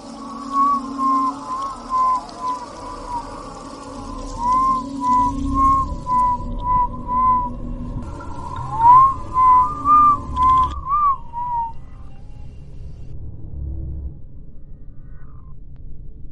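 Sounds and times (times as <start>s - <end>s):
low rumble: 0.0s - 16.2s
person whistling a melody in the dark inside a house: 0.3s - 7.6s, 8.6s - 12.0s.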